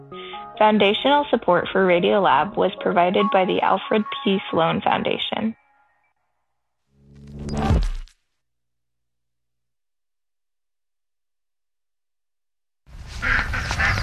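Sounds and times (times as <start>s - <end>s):
speech: 0.6s - 5.6s
ducks quacking at feeding time: 13.2s - 14.0s.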